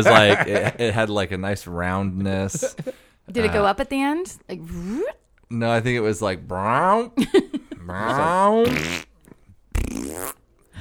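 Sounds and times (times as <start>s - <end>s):
laughter: 0.0s - 1.0s, 2.4s - 3.6s, 7.2s - 8.6s
speech: 0.0s - 9.1s
voice blowing a wet raspberry imitating a cartoon fart: 8.6s - 9.2s, 9.8s - 10.4s.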